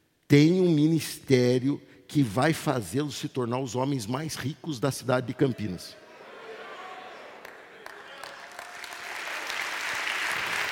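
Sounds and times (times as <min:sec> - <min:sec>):
speech: 0:00.3 - 0:06.0
group of young men applauding: 0:06.6 - 0:10.7.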